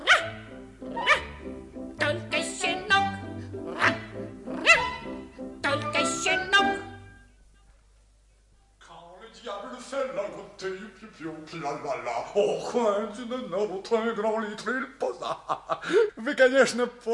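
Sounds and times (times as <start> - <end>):
puppy barking: 0.0 - 1.4, 3.8 - 5.0
bouncy musical accompaniment: 0.0 - 7.2
speech: 10.6 - 17.1.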